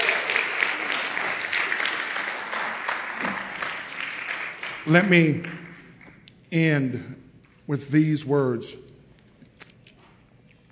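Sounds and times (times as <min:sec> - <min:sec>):
audience clapping in praise during a sermon: 0:00.0 - 0:06.2
speech: 0:04.9 - 0:05.6, 0:06.5 - 0:08.8.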